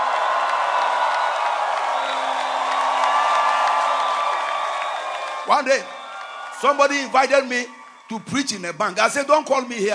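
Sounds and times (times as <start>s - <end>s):
scattered whoops: 0.0s - 6.8s
audience shouting praise to God and cheering: 0.0s - 9.9s
speech: 5.5s - 6.0s, 6.6s - 9.9s.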